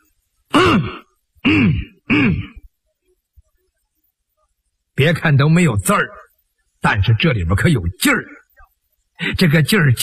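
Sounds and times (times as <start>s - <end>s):
person imitating throaty voiced coughs: 0.5s - 2.6s
speech: 5.0s - 6.2s, 6.8s - 8.4s, 9.2s - 10.0s.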